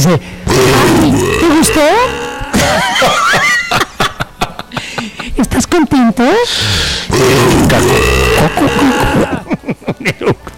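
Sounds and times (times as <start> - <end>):
speech: 0.1 - 3.3, 5.7 - 9.4
loud drawn-out burp: 0.4 - 3.1, 6.8 - 9.5
laughter: 2.5 - 5.4, 8.3 - 10.5.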